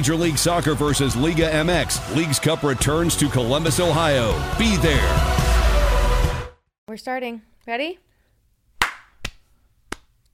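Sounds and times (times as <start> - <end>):
speech: 0.0 - 5.5, 6.9 - 8.0
hand claps made to sync audio: 8.8 - 10.2.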